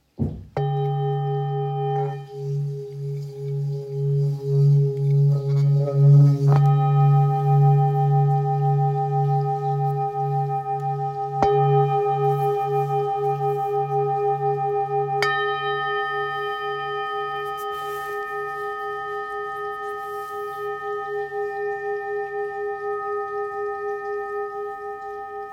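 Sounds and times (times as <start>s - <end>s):
therapeutic G sharp tuning forks 1,210kg: 0.6s - 25.5s.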